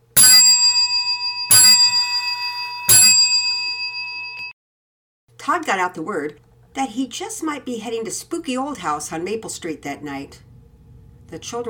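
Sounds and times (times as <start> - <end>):
last school bell ringing at end of school day: 0.2 - 4.5
speech: 5.5 - 10.5, 11.3 - 11.6.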